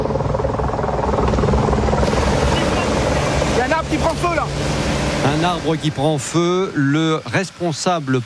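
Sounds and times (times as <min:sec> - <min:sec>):
water-bombing helicopter rotor chopping overhead at a large fire: 0:00.0 - 0:06.4
speech: 0:05.4 - 0:08.2.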